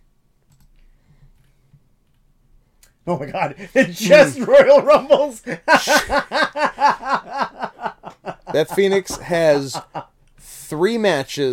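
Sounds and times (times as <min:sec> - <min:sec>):
soft rapid typing on a computer keyboard: 0:00.4 - 0:02.2
speech: 0:03.1 - 0:07.4, 0:08.6 - 0:10.1, 0:10.7 - 0:11.5
laughter: 0:03.2 - 0:10.1.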